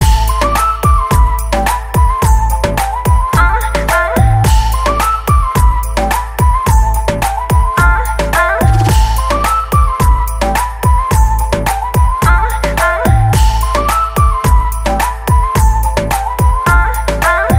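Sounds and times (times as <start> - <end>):
flute ringtone: 0.0 - 17.5.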